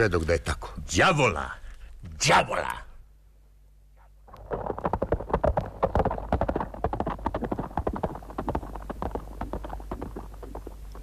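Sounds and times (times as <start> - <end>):
speech: 0.0 - 1.6, 2.2 - 2.8
horse galloping away with a young man riding it: 4.2 - 11.0.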